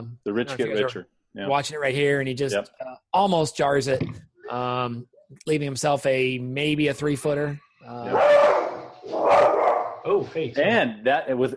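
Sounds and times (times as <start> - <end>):
speech: 0.0 - 8.3, 10.1 - 11.5
dog barking whiny drawn-out barks: 8.1 - 10.1.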